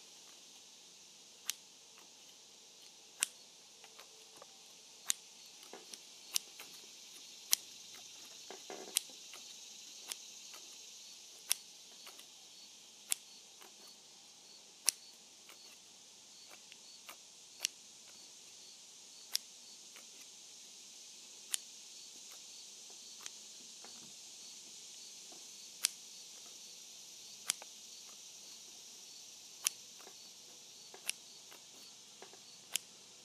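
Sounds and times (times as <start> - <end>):
steady high hiss: 0.0 - 33.2
sharp scissor snips: 1.4 - 12.4, 13.1 - 14.0, 14.8 - 18.3, 25.8 - 26.6, 27.4 - 28.6, 29.6 - 32.9.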